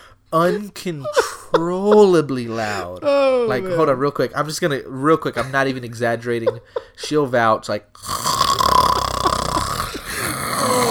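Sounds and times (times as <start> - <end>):
speech: 0.3 - 8.3
person vocally imitating loud snoring: 8.0 - 10.8.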